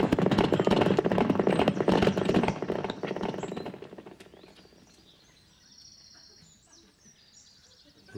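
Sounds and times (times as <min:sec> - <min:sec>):
several horses galloping off: 0:00.0 - 0:05.2.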